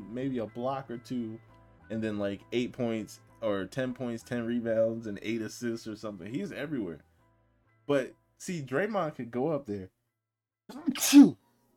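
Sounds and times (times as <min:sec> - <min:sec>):
speech: 0:00.2 - 0:07.1, 0:07.9 - 0:10.0, 0:10.7 - 0:11.4
person sneezing: 0:10.7 - 0:11.4.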